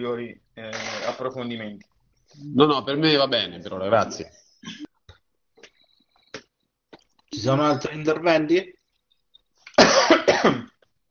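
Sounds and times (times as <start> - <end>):
speech: 0.0 - 4.9, 7.4 - 8.8
person coughing during an online meeting: 4.6 - 4.9, 9.8 - 10.8.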